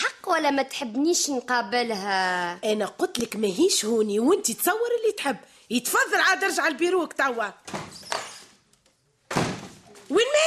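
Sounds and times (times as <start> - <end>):
speech: 0.3 - 7.8, 10.1 - 10.4
firm knock-like thud of the door: 7.7 - 8.3, 9.3 - 9.9
door thump and rattle as it is opened: 9.3 - 9.8.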